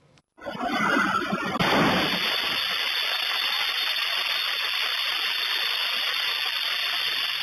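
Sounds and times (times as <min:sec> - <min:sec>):
steady loud roaring hiss after a gas explosion: 0:01.1 - 0:07.4
gas explosion at a filling station in Gujarat India while a car fills up: 0:01.5 - 0:04.6.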